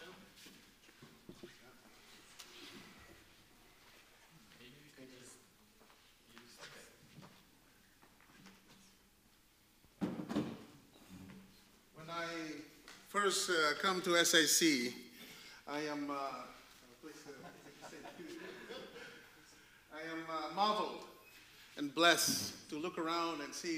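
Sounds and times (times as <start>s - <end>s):
chair set down with a clunk: 10.0s - 10.7s
chair carried and shuffled into place with bumps and scrapes: 10.0s - 10.8s
speech: 13.2s - 15.0s, 15.7s - 16.5s, 20.0s - 21.1s, 21.9s - 23.7s
laughter: 17.1s - 19.7s.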